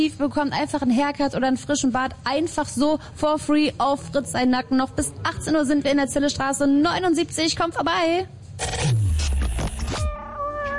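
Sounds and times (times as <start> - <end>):
speech: 0.0 - 9.4
cat meowing: 10.1 - 10.7.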